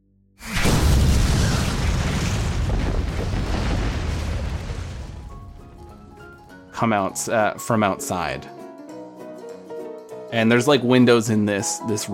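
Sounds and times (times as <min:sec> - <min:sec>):
loud explosion: 0:00.4 - 0:05.9
speech: 0:06.8 - 0:08.6, 0:10.3 - 0:12.1.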